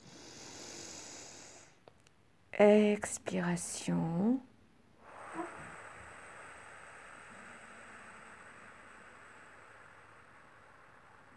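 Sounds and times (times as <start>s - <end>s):
person breathing in slowly during a guided breathing exercise: 0.0s - 1.8s, 5.0s - 11.3s
speech: 2.6s - 4.5s.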